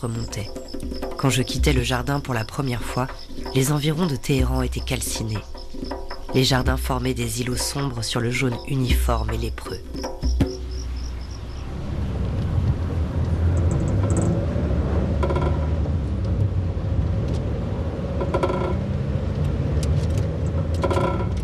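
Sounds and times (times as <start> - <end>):
speech: 0.0 - 10.1
faint insect chirps: 0.0 - 11.8
car engine rumbling while driving in third gear: 0.0 - 21.4.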